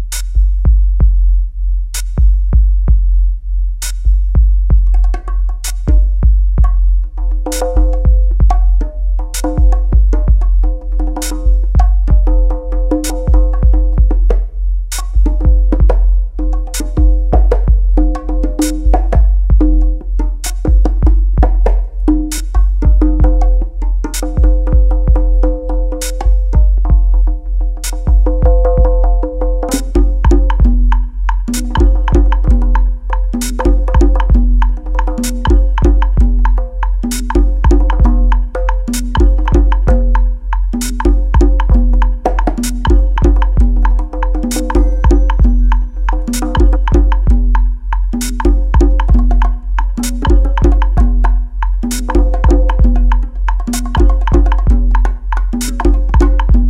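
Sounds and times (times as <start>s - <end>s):
conga: 0.1s - 0.8s, 2.0s - 3.0s, 3.8s - 56.6s
bongos: 0.1s - 1.3s, 2.0s - 3.2s, 3.8s - 56.6s
bells: 44.4s - 47.2s.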